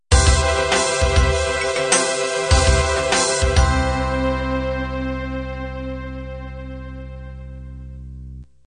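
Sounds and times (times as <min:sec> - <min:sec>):
slow ballad music: 0:00.1 - 0:08.5.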